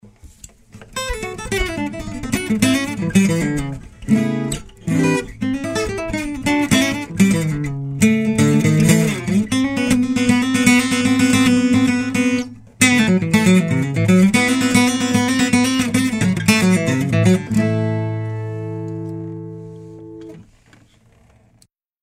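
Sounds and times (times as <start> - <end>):
guitars playing: 0.8 - 20.5.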